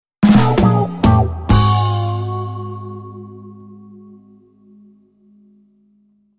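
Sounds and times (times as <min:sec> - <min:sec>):
guitar jingle: 0:00.2 - 0:04.9.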